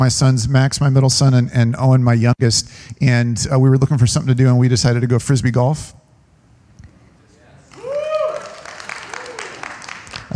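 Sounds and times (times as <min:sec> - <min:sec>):
speech: 0:00.0 - 0:06.0
crowd whooping: 0:07.7 - 0:10.3.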